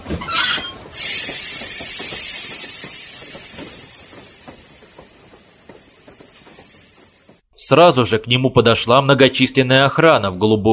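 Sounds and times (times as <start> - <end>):
speech: 0.1 - 0.4, 7.7 - 10.7
metro train brakes screeching at a platform: 0.2 - 5.3
metro train hissing as it comes to rest: 0.9 - 7.4.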